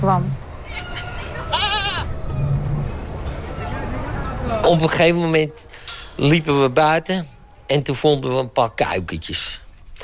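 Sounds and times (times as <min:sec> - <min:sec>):
speech: 0:00.0 - 0:00.4, 0:04.4 - 0:09.6
low murmur: 0:00.0 - 0:06.1
goat bleating at a petting farm: 0:00.7 - 0:02.1.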